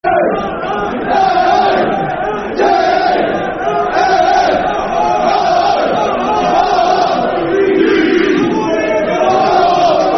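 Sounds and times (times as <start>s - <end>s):
football crowd chanting: 0.0s - 10.1s.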